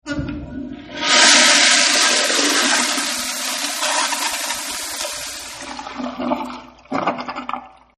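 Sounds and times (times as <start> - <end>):
public toilet flushing: 0.7 - 7.9.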